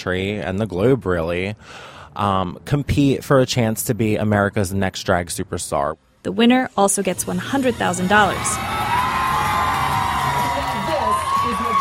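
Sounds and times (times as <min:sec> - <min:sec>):
speech: 0:00.0 - 0:08.8
crowd of fans roaring and cheering at a viewing party: 0:07.2 - 0:11.7
fans shouting and whooping at a viewing party: 0:07.7 - 0:11.7.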